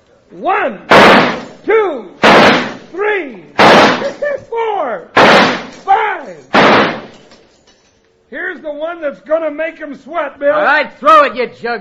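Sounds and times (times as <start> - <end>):
speech: 0.3 - 2.2, 2.9 - 7.3, 8.3 - 11.8
gunshots in a shooting contest: 0.9 - 1.6, 2.2 - 2.9, 3.6 - 4.2, 5.2 - 5.9, 6.5 - 7.3.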